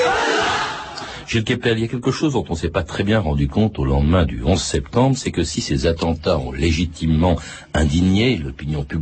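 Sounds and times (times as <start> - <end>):
crowd of young men chanting slogans: 0.1 - 1.0
speech: 1.3 - 9.0.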